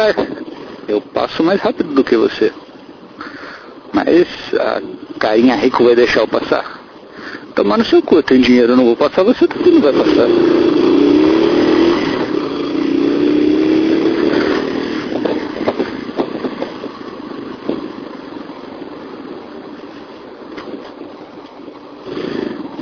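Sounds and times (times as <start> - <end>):
speech: 0.0 - 10.9
road noise in city traffic in São Paulo: 0.0 - 22.8
work motorcycle engine revving through city traffic in São Paulo: 8.9 - 22.8.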